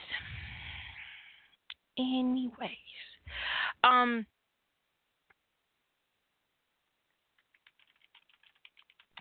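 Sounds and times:
speech: 0:02.0 - 0:02.9, 0:04.0 - 0:04.3
typing on a computer keyboard: 0:07.3 - 0:09.1.

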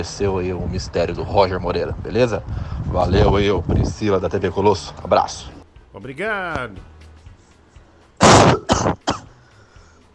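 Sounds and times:
speech: 0:00.0 - 0:06.9
harsh coughs: 0:08.2 - 0:09.4.

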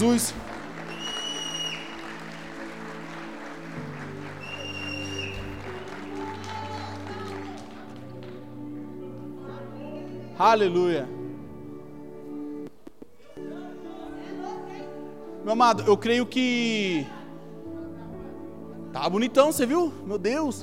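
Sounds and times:
speech: 0:00.0 - 0:00.5, 0:10.4 - 0:11.2, 0:15.4 - 0:17.2, 0:18.9 - 0:20.6
large congregation clapping: 0:00.0 - 0:09.3
music: 0:00.0 - 0:20.6
congregation cheers and whoops: 0:00.8 - 0:02.2, 0:04.4 - 0:07.7.

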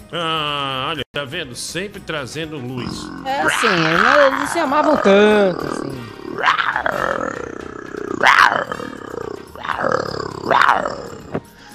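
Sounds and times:
speech: 0:00.1 - 0:08.9
deep rumbling animal roar sound effect: 0:02.8 - 0:11.5.

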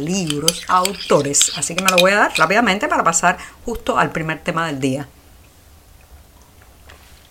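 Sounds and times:
sipping coffee: 0:00.0 - 0:02.6
speech: 0:00.0 - 0:05.2.

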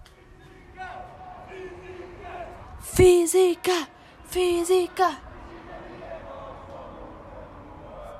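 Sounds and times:
crowd chatter: 0:00.0 - 0:08.1
university students chanting outdoors at night: 0:00.2 - 0:08.1
speech: 0:03.0 - 0:05.2.

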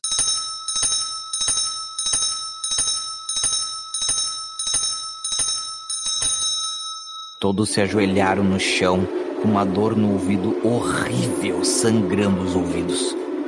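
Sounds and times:
metallic bell clanging: 0:00.0 - 0:07.7
speech: 0:07.4 - 0:13.2.

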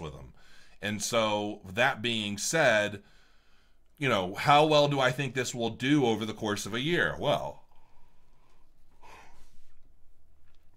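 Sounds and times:
quiet breathing: 0:00.3 - 0:00.8, 0:03.0 - 0:04.0, 0:07.6 - 0:10.3
speech: 0:00.8 - 0:03.2, 0:04.0 - 0:07.6.

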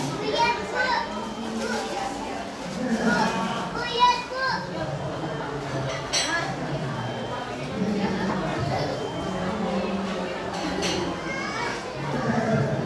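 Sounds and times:
children's voices: 0:00.0 - 0:05.1, 0:07.8 - 0:12.8
murmur of many voices talking in a busy cafe: 0:00.0 - 0:12.8.

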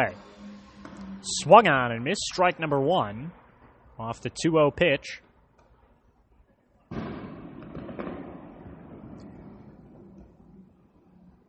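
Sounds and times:
speech: 0:00.0 - 0:00.2, 0:01.2 - 0:03.4, 0:04.0 - 0:05.2
fireworks booming in the city: 0:06.9 - 0:11.1.

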